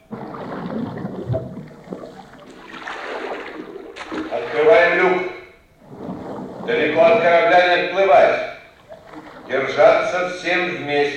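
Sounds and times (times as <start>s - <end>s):
gurgles: 0.0s - 7.3s
rushing churning water filling an exit airlock: 0.0s - 10.6s
speech: 9.8s - 11.1s.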